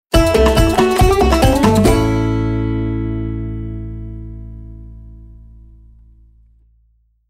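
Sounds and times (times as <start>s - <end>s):
banjo jingle: 0.1s - 5.2s.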